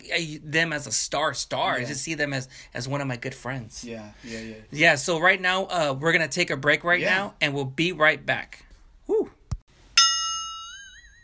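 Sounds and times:
speech: 0:00.1 - 0:08.6
bell struck to mark the end of a break: 0:10.0 - 0:11.2.

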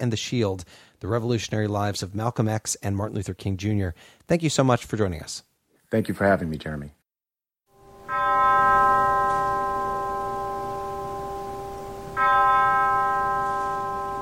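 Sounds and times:
speech: 0:00.0 - 0:07.0
deep church bell tolling at a funeral in Atlanta: 0:07.8 - 0:14.2.

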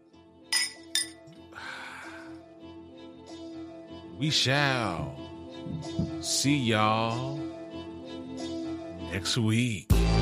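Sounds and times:
glasses clinking together in a toast: 0:00.5 - 0:01.4
speech: 0:04.2 - 0:05.2, 0:05.8 - 0:07.5, 0:09.1 - 0:10.1.

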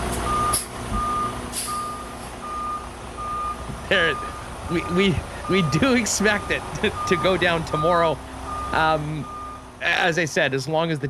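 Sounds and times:
low engine rumble of a large vehicle: 0:00.0 - 0:11.0
large vehicle reverse alarm beeps: 0:00.3 - 0:04.5, 0:06.4 - 0:09.6
speech: 0:03.9 - 0:11.0.

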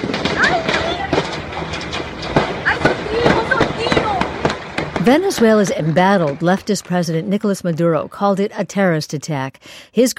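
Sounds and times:
gunfire cracks: 0:00.0 - 0:05.5
constant rushing background: 0:00.0 - 0:06.9
police helicopter hovering over the Supreme Court and Interior Ministry in Venezuela: 0:00.0 - 0:09.1
faint shouting voices: 0:00.2 - 0:01.6, 0:02.4 - 0:06.4
speech: 0:05.0 - 0:10.1.

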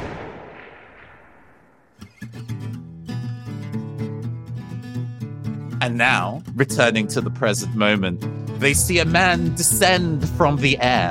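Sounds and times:
loud booming gunshot: 0:00.0 - 0:02.0
speech: 0:05.8 - 0:11.0.

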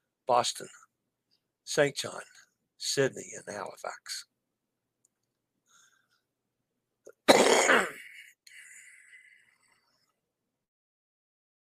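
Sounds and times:
speech: 0:00.3 - 0:00.8, 0:01.7 - 0:04.3
person coughing harshly: 0:07.2 - 0:08.4
wheezy raspy breath after cough: 0:07.9 - 0:09.9.

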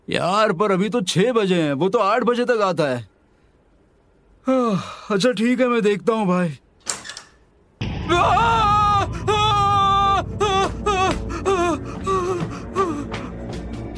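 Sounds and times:
speech: 0:00.1 - 0:03.1, 0:04.4 - 0:06.6
man screaming loudly: 0:07.9 - 0:13.1.

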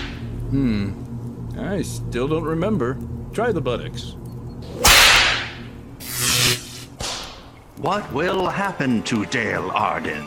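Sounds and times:
speech: 0:00.5 - 0:01.0, 0:01.6 - 0:04.8, 0:07.8 - 0:10.2
whip cracking: 0:04.8 - 0:06.4, 0:07.0 - 0:07.5.

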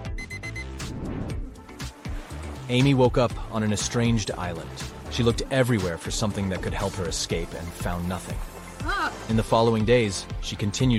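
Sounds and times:
alarm clock ringing with loud repeated electronic beeps: 0:00.0 - 0:00.8
busy dense music-like sound: 0:00.0 - 0:10.9
speech: 0:02.7 - 0:10.9.

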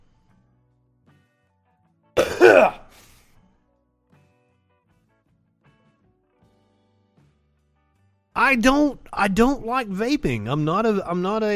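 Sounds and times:
rough phlegmy throat clearing: 0:02.2 - 0:02.9
smoker's harsh cough: 0:02.2 - 0:02.9
speech: 0:08.5 - 0:11.5.

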